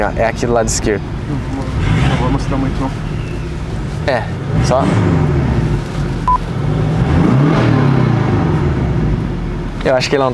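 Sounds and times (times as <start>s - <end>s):
speech: 0.0s - 3.1s, 4.0s - 5.4s, 9.8s - 10.3s
car engine rumbling heard from inside the cabin: 0.0s - 10.3s
short electronic beep: 6.2s - 6.4s.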